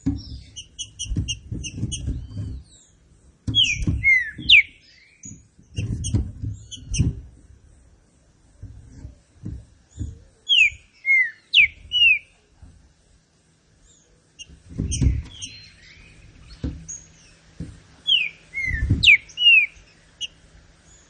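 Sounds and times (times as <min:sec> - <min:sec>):
dull low knocks: 0:00.0 - 0:07.7, 0:08.6 - 0:10.4, 0:14.4 - 0:19.4
green-winged saltator singing slurred swooping whistles: 0:03.6 - 0:05.3, 0:10.4 - 0:12.3, 0:18.1 - 0:19.8.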